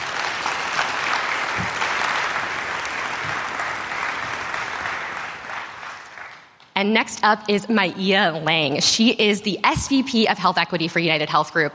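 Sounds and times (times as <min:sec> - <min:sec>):
room full of people clapping: 0:00.0 - 0:06.6
speech: 0:06.8 - 0:11.7.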